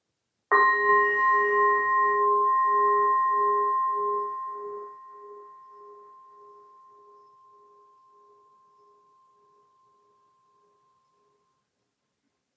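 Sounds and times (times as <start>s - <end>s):
meditation bell struck to begin a poem reading: 0.5s - 11.6s.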